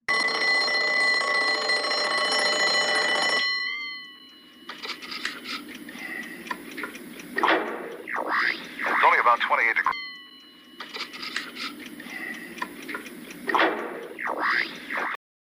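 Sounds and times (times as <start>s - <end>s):
alarm clock ringing: 0.1s - 6.4s, 8.9s - 12.5s
alarm clock ticking and clicking: 0.1s - 15.2s.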